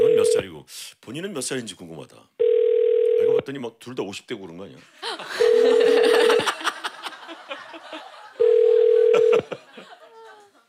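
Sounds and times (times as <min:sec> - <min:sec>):
ringback tone of an unanswered telephone call: 0:00.0 - 0:00.4, 0:02.4 - 0:03.4, 0:05.4 - 0:06.4, 0:08.4 - 0:09.4
speech: 0:00.4 - 0:02.4, 0:03.2 - 0:06.7
people chatting and laughing quietly: 0:05.0 - 0:10.6.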